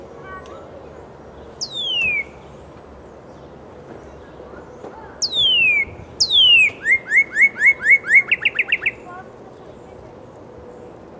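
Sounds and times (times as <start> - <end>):
northern cardinal whistled song: 1.6 - 2.4, 5.2 - 9.0.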